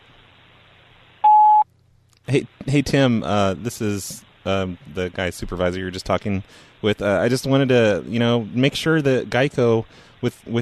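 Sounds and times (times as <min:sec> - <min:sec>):
faint line hiss: 0:00.0 - 0:10.5
electronic answering machine beep: 0:01.2 - 0:01.6
speech: 0:02.3 - 0:10.5.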